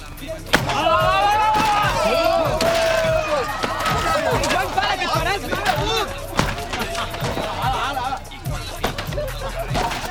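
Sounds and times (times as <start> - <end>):
laughter: 0.0 - 10.0
chair smashed against the floor, heavy splintering crashes: 0.5 - 7.9, 8.8 - 10.0
person shouting: 0.7 - 6.2.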